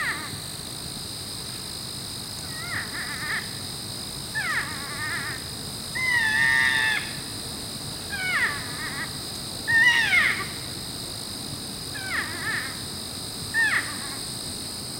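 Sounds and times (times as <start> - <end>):
porcupine whining squeals rebuffing another porcupine: 2.5 - 3.4, 4.4 - 5.4, 6.0 - 7.2, 8.1 - 9.1, 9.7 - 10.5, 12.0 - 12.8, 13.6 - 14.2.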